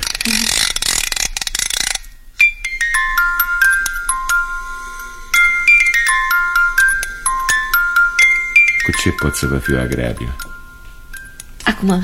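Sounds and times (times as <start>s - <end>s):
rasping ratchet of a musical clock being wound: 0.0s - 11.8s
musical clock chiming a slow bell-like melody: 2.4s - 12.0s
speech: 8.9s - 10.4s, 11.8s - 12.0s.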